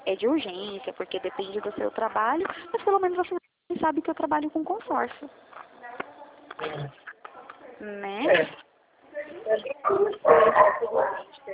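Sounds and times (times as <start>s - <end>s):
speech: 0.1s - 5.7s, 6.6s - 7.0s, 7.8s - 8.6s, 9.5s - 11.5s
dogs barking and yipping: 9.9s - 11.4s.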